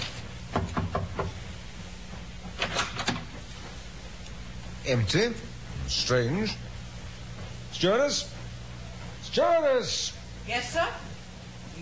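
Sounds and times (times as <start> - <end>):
quiet room hum: 0.0 - 11.8
knocking on a cabin door: 0.6 - 1.4
speech: 4.9 - 6.7, 7.8 - 8.3, 9.3 - 11.1.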